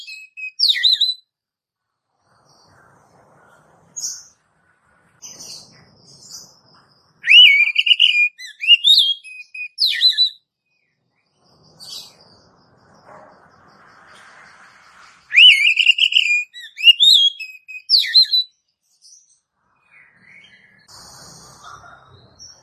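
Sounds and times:
Oriental magpie-robin singing warbled whistles: 0.0 - 1.2, 7.2 - 10.4, 15.3 - 18.5.

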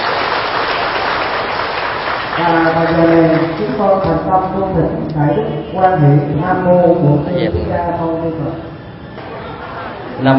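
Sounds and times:
audience applause at a Buddhist dharma talk: 0.0 - 3.8
speech: 2.4 - 8.7, 10.2 - 10.3.

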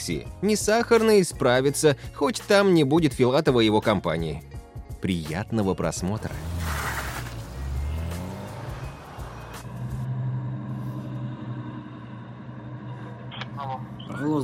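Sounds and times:
speech: 0.0 - 6.5, 14.2 - 14.4
broadband road noise: 5.8 - 14.4
taxi car pulling up with low engine rumble: 6.0 - 14.4.

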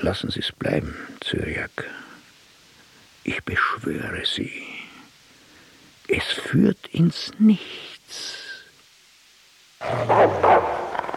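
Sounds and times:
speech: 0.0 - 2.1, 3.2 - 4.8, 6.1 - 8.4, 9.8 - 10.8
dogs barking in a hall: 9.8 - 11.1.

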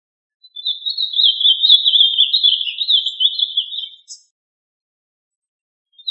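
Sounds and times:
bird warbling trill: 0.4 - 4.3, 6.0 - 6.1.

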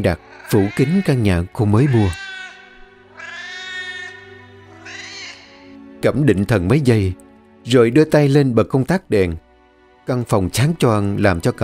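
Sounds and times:
speech: 0.0 - 2.2, 6.0 - 9.4, 10.1 - 11.6
cat yowling outside a house at night: 0.2 - 5.7.

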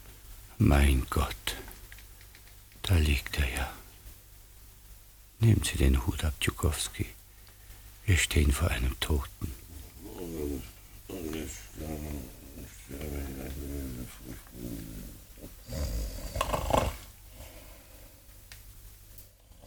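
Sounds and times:
speech: 0.6 - 1.7, 2.8 - 3.8, 5.4 - 7.2, 8.1 - 9.6
man breathing quietly: 1.2 - 1.9, 2.8 - 4.6, 6.6 - 8.4, 9.4 - 18.5
man snoring: 11.4 - 17.8, 19.4 - 19.6.

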